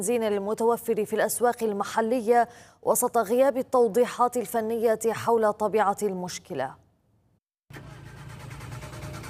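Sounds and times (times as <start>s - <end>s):
speech: 0.0s - 6.8s
car engine cranking and failing to start: 7.7s - 9.2s.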